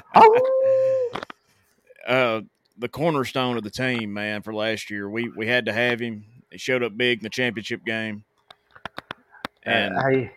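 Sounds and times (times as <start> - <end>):
dog howling: 0.0 - 1.2
speech: 0.2 - 1.3, 2.0 - 8.3, 9.6 - 10.3.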